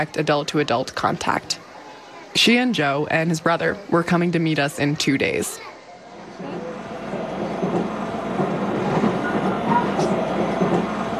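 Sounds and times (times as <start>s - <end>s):
speech: 0.0s - 1.6s, 2.3s - 5.7s
train rolling along the rails heard from inside a carriage: 6.5s - 11.1s.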